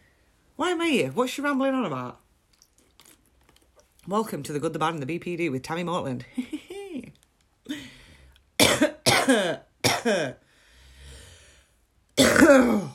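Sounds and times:
speech: 0:00.6 - 0:02.2, 0:04.1 - 0:06.6, 0:09.3 - 0:10.4, 0:12.5 - 0:12.9
harsh hacking coughs: 0:08.6 - 0:10.4, 0:12.2 - 0:12.9.

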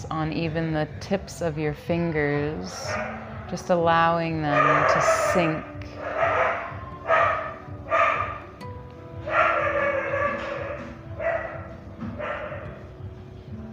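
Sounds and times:
speech: 0:00.1 - 0:05.9
dog barking and howling: 0:02.7 - 0:03.5, 0:04.5 - 0:08.4, 0:09.3 - 0:12.8.

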